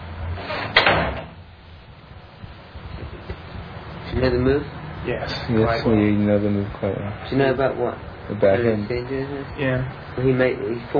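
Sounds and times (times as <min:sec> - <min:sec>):
door closing thud with rattle: 0:00.6 - 0:01.4
speech: 0:04.2 - 0:10.9.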